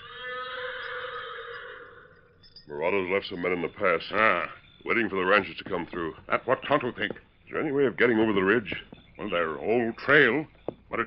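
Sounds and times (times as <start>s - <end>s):
black horse whinnying in answer to another horse: 0.0s - 2.4s
speech: 2.7s - 11.0s.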